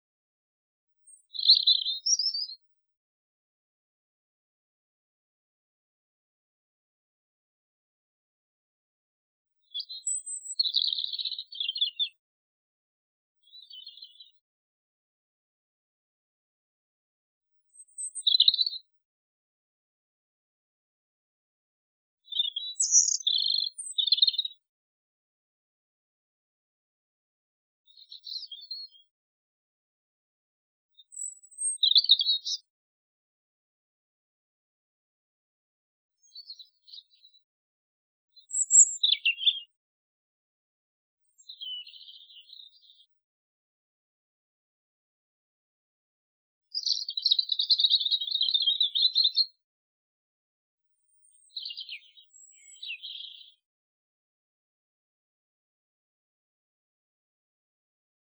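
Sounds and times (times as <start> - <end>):
birdsong: 1.1 - 2.6, 9.6 - 12.2, 13.4 - 14.4, 17.7 - 18.9, 22.3 - 24.6, 27.9 - 29.1, 31.0 - 32.7, 36.2 - 37.4, 38.4 - 39.8, 41.2 - 43.2, 46.7 - 49.6, 51.0 - 53.7.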